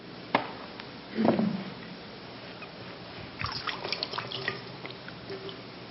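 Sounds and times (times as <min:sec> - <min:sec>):
water splashing and dripping from a basin: 0:03.4 - 0:05.6.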